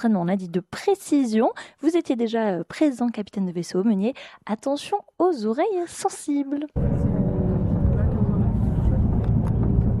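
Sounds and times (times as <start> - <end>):
speech: 0.0 - 7.0
combat jet roaring during landing practice: 6.8 - 9.9.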